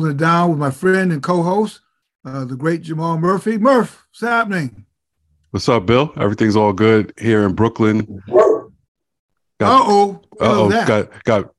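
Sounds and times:
speech: 0.0s - 4.9s, 5.5s - 8.5s, 9.6s - 11.5s
dogs barking with howling tone: 8.2s - 8.8s.

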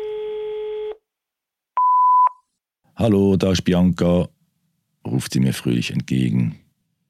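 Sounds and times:
telephone line tone after dialing a number: 0.0s - 1.0s
speech: 3.0s - 4.4s, 5.0s - 6.6s.

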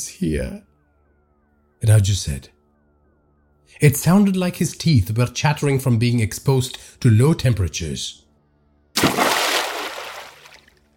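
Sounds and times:
speech: 0.0s - 0.7s, 1.8s - 2.6s, 3.8s - 8.2s
body falling into water: 9.0s - 10.9s.

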